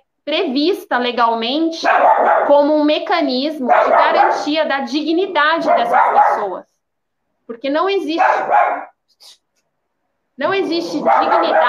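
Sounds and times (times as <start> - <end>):
speech: 0.2 - 6.7, 7.5 - 9.4, 10.4 - 11.6
dog yipping: 1.8 - 2.6, 3.6 - 4.6, 5.6 - 6.6, 8.2 - 8.9, 10.8 - 11.6
dog barking: 1.8 - 2.7, 3.5 - 6.6, 8.1 - 9.0, 10.6 - 11.6.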